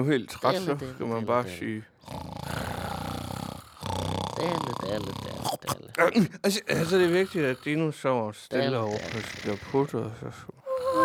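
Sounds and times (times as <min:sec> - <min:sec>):
speech: 0:00.0 - 0:02.2, 0:04.4 - 0:11.0
child imitating snoring: 0:02.0 - 0:05.7, 0:06.7 - 0:07.8, 0:08.7 - 0:10.0, 0:10.6 - 0:11.0.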